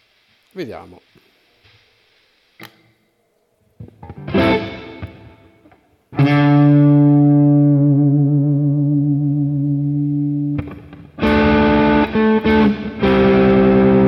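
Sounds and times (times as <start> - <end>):
speech: 0.5 - 1.3
electric guitar through multi-effects unit with crunch distortion: 3.8 - 14.0.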